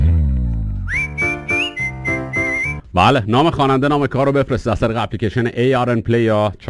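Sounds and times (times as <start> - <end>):
clear high whistled tune from a song recording: 0.8 - 2.9
speech: 3.0 - 6.6.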